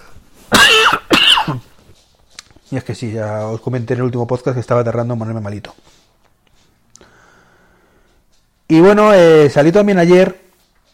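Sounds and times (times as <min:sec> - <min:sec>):
loud rough coughs: 0:00.5 - 0:01.8
speech: 0:02.7 - 0:06.1, 0:08.7 - 0:10.4.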